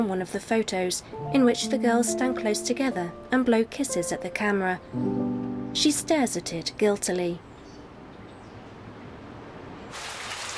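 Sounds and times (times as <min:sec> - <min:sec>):
speech: 0:00.0 - 0:07.5
heavy rain falling outside a security office: 0:09.9 - 0:10.5.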